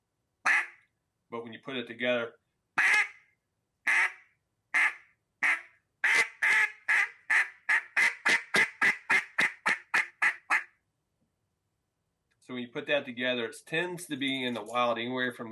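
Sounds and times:
hen mallard duck greeting call quacking: 0:00.4 - 0:00.8, 0:02.8 - 0:03.2, 0:03.9 - 0:10.7
speech: 0:01.3 - 0:02.4, 0:12.8 - 0:15.4.

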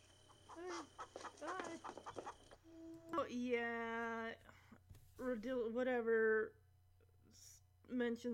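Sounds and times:
faint hum: 0:00.0 - 0:08.3
chickens clucking and squawking: 0:00.1 - 0:02.6
speech: 0:00.6 - 0:04.5, 0:05.2 - 0:06.6, 0:07.3 - 0:08.3.

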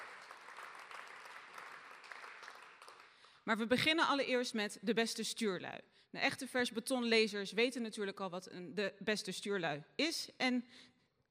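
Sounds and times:
audience applause for musicians: 0:00.0 - 0:03.2
speech: 0:03.4 - 0:10.9.

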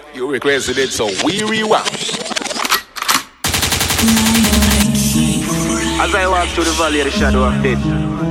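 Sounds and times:
speech: 0:00.1 - 0:02.2, 0:04.0 - 0:08.2
gunshot sound effects: 0:03.4 - 0:05.0.

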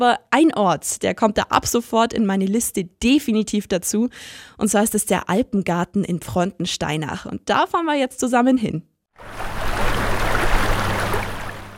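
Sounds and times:
speech: 0:00.0 - 0:09.4
babbling brook splashing and gurgling: 0:09.2 - 0:11.7.

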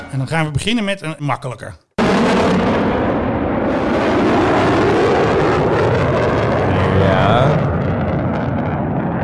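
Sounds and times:
speech: 0:00.3 - 0:02.8, 0:07.1 - 0:07.6
F-35 fighter jet roaring past: 0:02.0 - 0:09.2.

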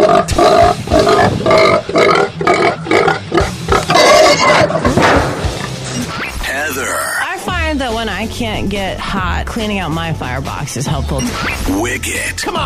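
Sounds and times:
pigs grunting and squealing: 0:00.0 - 0:07.3
speech: 0:08.6 - 0:12.6.

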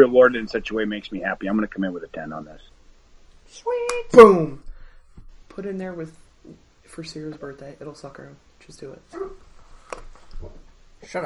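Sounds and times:
speech: 0:00.0 - 0:02.7, 0:03.5 - 0:04.6, 0:05.6 - 0:11.2
dog barking: 0:09.1 - 0:09.5.

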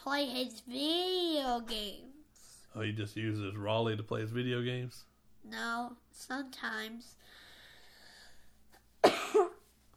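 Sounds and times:
speech: 0:00.0 - 0:02.2, 0:02.8 - 0:07.4
child coughing wet double cough: 0:09.0 - 0:09.7.

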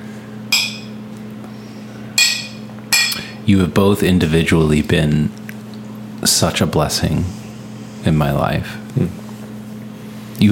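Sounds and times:
low steady hum: 0:00.0 - 0:10.5
glasses clinking in a toast: 0:00.5 - 0:01.0, 0:02.2 - 0:03.3
speech: 0:03.5 - 0:05.4, 0:06.3 - 0:07.4, 0:08.0 - 0:09.2.

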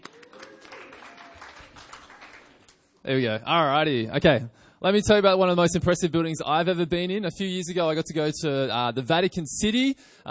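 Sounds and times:
audience clapping: 0:00.0 - 0:02.9
speech: 0:03.1 - 0:10.2.

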